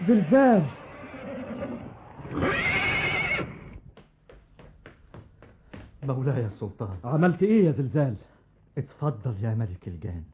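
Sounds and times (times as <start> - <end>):
speech: 0.0 - 0.8, 2.3 - 2.8, 6.1 - 10.3
horse neighing: 0.0 - 3.8
hooves clopping: 3.4 - 6.2.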